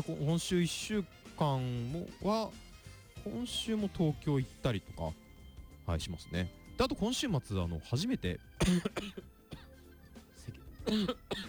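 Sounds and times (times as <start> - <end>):
speech: 0.0 - 5.2, 5.9 - 9.3, 10.8 - 11.4
faint dry coughing from someone with a lingering cold: 8.6 - 9.8, 10.5 - 11.4.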